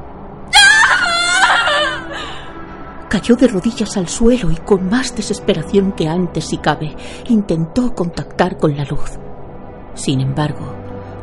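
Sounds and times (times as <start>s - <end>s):
high-pitched wavering anguished shriek: 0.5s - 2.6s
speech: 3.1s - 9.3s, 10.0s - 11.2s.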